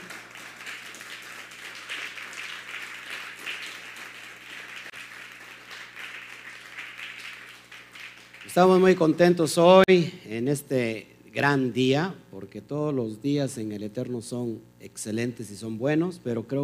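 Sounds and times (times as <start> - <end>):
crowd applauding: 0.0 - 9.2
speech: 8.5 - 16.6.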